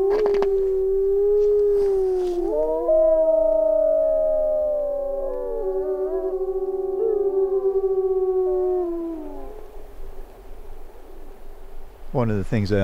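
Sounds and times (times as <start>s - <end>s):
speech: 0.0s - 0.6s, 12.2s - 12.8s
wolf howling: 0.0s - 9.7s.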